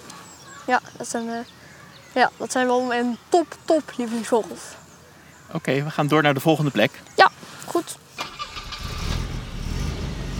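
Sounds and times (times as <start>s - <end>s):
speech: 0.7s - 1.6s, 2.2s - 4.8s, 5.5s - 8.0s
car driving: 8.2s - 10.3s.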